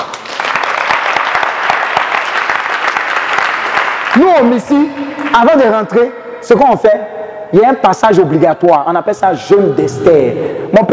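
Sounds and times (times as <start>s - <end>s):
church congregation applauding: 0.0s - 6.7s
speech: 4.2s - 10.9s.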